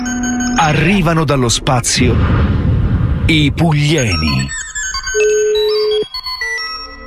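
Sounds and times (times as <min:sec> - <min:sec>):
electronic telephone ringtone: 0:00.0 - 0:00.6, 0:04.7 - 0:07.0
speech: 0:00.6 - 0:02.7, 0:03.3 - 0:04.6.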